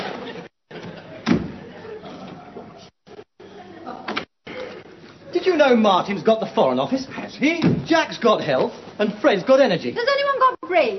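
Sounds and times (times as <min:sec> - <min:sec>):
steady room noise: 0:00.0 - 0:10.9
front door slamming shut: 0:01.2 - 0:01.6, 0:07.6 - 0:08.0
speech: 0:05.4 - 0:10.9.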